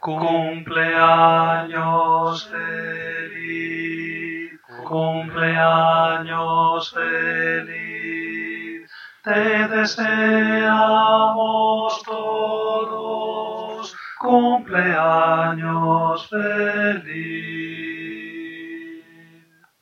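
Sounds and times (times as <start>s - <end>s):
singing: 0.0s - 19.8s.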